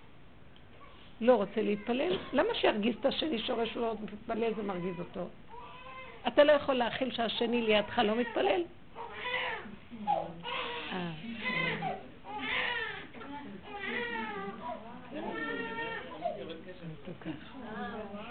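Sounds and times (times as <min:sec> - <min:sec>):
speech: 0:01.2 - 0:05.4, 0:06.2 - 0:08.8
baby girl crying: 0:04.5 - 0:06.2, 0:08.1 - 0:13.1, 0:13.7 - 0:16.4.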